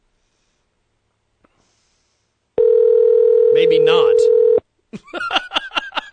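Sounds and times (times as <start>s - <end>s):
Skype outgoing call ringing tone: 2.6s - 4.6s
speech: 3.6s - 4.4s.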